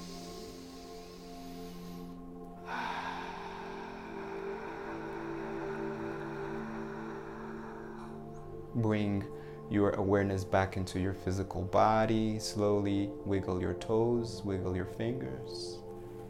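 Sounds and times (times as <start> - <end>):
deep breath in during a heart-centred meditation: 0.0 - 8.7, 9.3 - 9.7
low sustained drone: 0.0 - 16.2
speech: 8.8 - 15.8.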